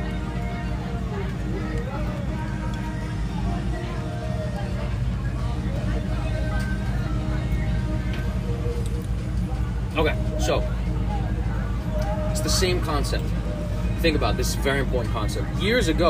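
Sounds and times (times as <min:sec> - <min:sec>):
passing boat engine rumble: 0:00.0 - 0:16.0
speech: 0:10.5 - 0:10.7, 0:12.6 - 0:13.4, 0:14.0 - 0:16.0.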